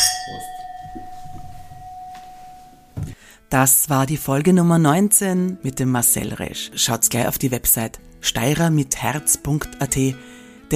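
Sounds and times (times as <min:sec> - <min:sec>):
glasses clinking together in a toast: 0:00.0 - 0:03.0
speech: 0:03.5 - 0:10.7.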